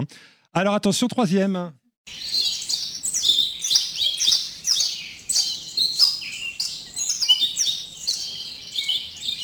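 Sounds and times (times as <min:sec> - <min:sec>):
speech: 0:00.0 - 0:02.3
caged birds chirping: 0:02.1 - 0:09.4.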